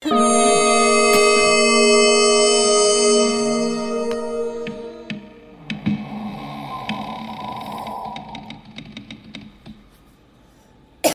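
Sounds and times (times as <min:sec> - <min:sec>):
spooky horror cinematic stinger: 0:00.0 - 0:08.2.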